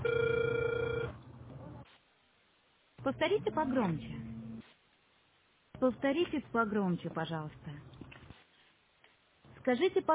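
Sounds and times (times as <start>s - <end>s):
telephone call ringing tone while waiting for an answer: 0.0s - 1.2s
speech: 3.0s - 4.3s, 5.8s - 7.9s, 9.6s - 10.1s.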